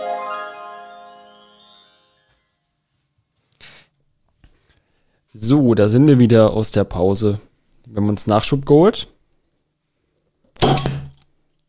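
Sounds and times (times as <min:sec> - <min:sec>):
speech: 0:05.4 - 0:09.2
cold bottle popping open: 0:10.6 - 0:11.2.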